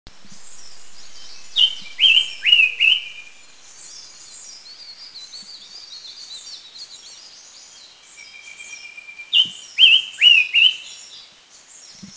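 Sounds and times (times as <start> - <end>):
Silver-eared Mesia in Mishmi India: 0.1 - 6.3, 8.2 - 11.1.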